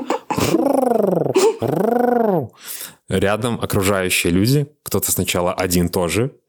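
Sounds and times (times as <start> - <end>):
person imitating pigeon cooing: 0.0 - 2.6
speech: 3.2 - 6.4.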